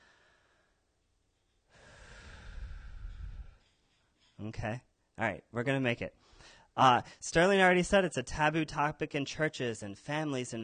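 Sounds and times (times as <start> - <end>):
audience breathing in deeply together at a talk: 1.7 - 3.6
speech: 4.4 - 10.6.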